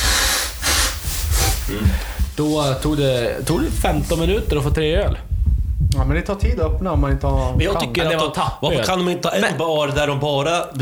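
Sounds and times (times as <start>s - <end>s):
person blowing their nose: 0.0s - 4.3s
speech: 1.7s - 5.3s, 6.0s - 10.8s.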